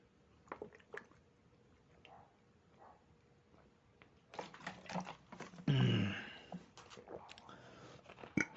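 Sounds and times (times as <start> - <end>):
person sipping water with slurps and clicks: 4.6 - 8.5.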